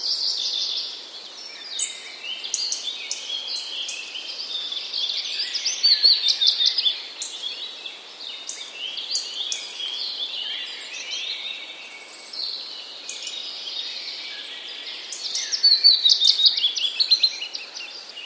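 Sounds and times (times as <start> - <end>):
chorus of several birds singing: 0.0 - 18.2.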